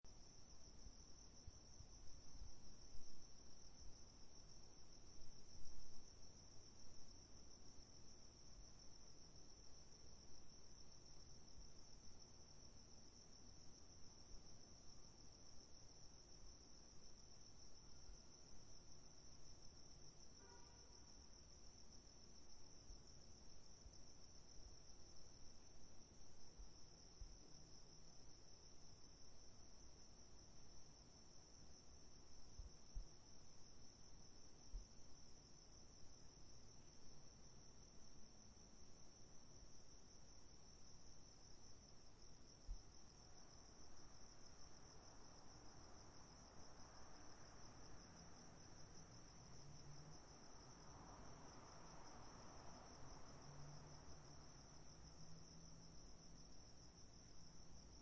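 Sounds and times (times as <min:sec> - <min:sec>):
crickets chirping at night: 0:00.1 - 0:58.0.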